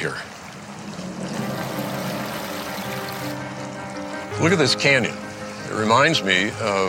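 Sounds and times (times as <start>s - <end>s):
small stream flowing in a canyon: 0.0s - 6.8s
speech: 4.4s - 6.8s.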